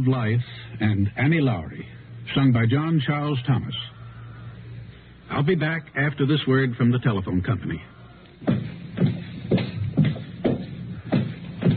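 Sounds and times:
speech: 0.0s - 4.0s, 5.3s - 8.6s
footsteps walking at an even pace: 8.3s - 11.7s.

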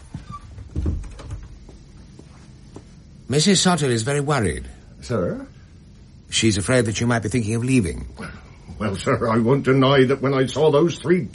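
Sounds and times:
door rattling as it settles: 0.4s - 1.6s
door swinging shut with a dull low thump: 0.6s - 1.6s
speech: 3.3s - 5.5s, 6.3s - 11.3s.

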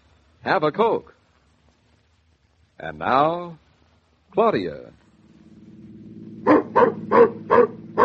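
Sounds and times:
speech: 0.4s - 1.2s, 2.8s - 3.6s, 4.3s - 5.0s
low constant engine-like hum: 4.8s - 8.0s
dog barking: 6.4s - 8.0s.

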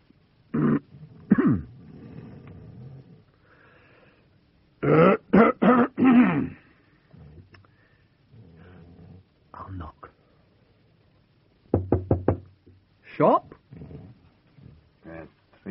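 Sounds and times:
person coughing deliberately to wake a sleeping man: 0.6s - 1.7s, 4.8s - 6.6s
speech: 1.5s - 1.7s.

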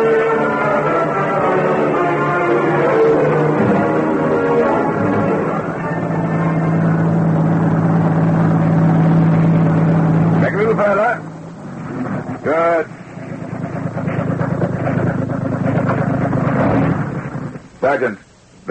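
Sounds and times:
voices: 0.0s - 7.6s, 10.3s - 15.1s
heavy truck engine idling: 0.0s - 17.8s.

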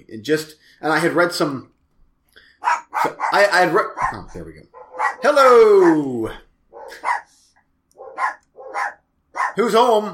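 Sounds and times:
speech: 0.1s - 1.7s, 3.0s - 7.1s, 9.6s - 10.1s
dog barking outside: 2.6s - 6.1s, 6.7s - 7.4s, 8.0s - 9.6s.

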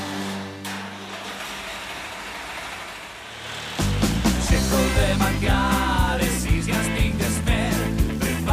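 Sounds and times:
heavy diesel tractor engine idling and running: 0.0s - 8.4s.

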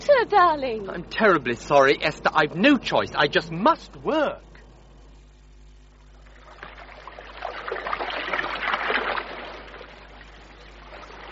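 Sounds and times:
speech: 0.2s - 4.5s
river water swishing and trickling as a punt is poled: 6.0s - 11.2s.

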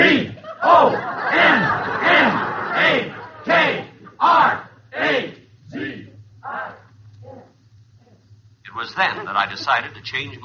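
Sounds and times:
football stadium crowd cheering wildly after a field goal: 0.0s - 5.3s
laughter: 0.3s - 4.8s, 8.7s - 10.4s
speech: 9.0s - 10.4s.

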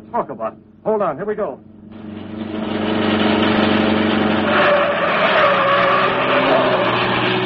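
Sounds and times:
speech: 0.1s - 1.7s
car engine roaring past, rising in pitch: 1.9s - 7.4s
car tires screeching: 1.9s - 7.4s.

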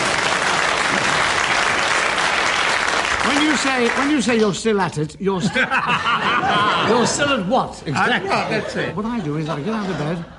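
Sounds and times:
audience applause: 0.0s - 4.3s
speech: 3.4s - 10.3s
laughter: 5.4s - 10.3s.

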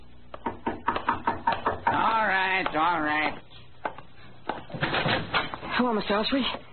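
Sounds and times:
scattered taps: 0.3s - 3.0s
sharp knocks on a door: 0.4s - 3.0s
speech: 2.4s - 3.5s, 5.8s - 6.7s.

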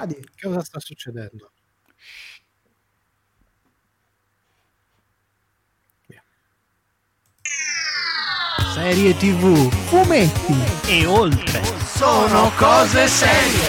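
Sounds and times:
speech: 0.0s - 2.4s, 8.7s - 13.6s
short hiss: 2.0s - 2.5s
podcast theme jingle with bright sweeping falling tones: 7.5s - 13.6s.

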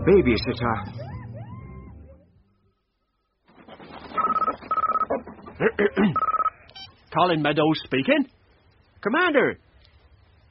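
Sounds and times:
speech: 0.0s - 1.0s, 5.6s - 6.3s, 7.1s - 8.4s, 9.0s - 9.6s
telephone ringing: 4.2s - 5.1s, 6.1s - 6.9s.

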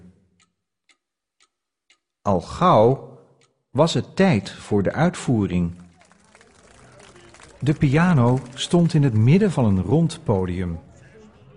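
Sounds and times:
clock ticking: 0.0s - 5.0s
speech: 2.3s - 3.1s, 3.7s - 5.8s, 7.6s - 10.9s.

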